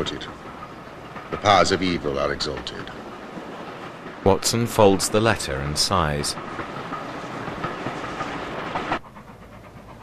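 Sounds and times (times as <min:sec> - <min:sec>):
speech: 0:00.0 - 0:00.4, 0:01.3 - 0:03.0, 0:04.2 - 0:06.9
faint rhythmic clacking of train on railway tracks: 0:00.0 - 0:10.0
train rumbling along railway tracks through a moorland valley: 0:00.0 - 0:10.0.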